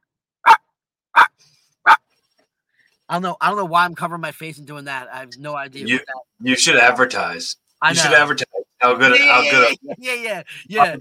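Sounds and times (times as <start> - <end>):
speech: 3.1 - 10.9
person imitating chihuahua yapping: 5.8 - 6.1, 8.9 - 10.0, 10.7 - 10.9
laughter: 5.8 - 10.9.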